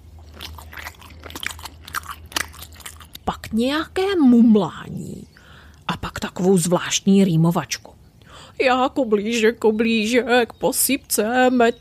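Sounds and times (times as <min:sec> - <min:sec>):
wet chewing and lip-smacking with crunchy bites: 0:00.0 - 0:03.6
low steady hum: 0:00.0 - 0:11.7
speech: 0:03.5 - 0:05.2, 0:06.0 - 0:08.0, 0:08.6 - 0:11.7.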